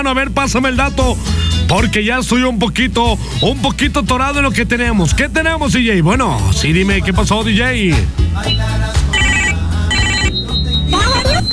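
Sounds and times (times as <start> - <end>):
speech: 0.0 - 9.1
electronic telephone ringing for an incoming call: 9.1 - 10.4.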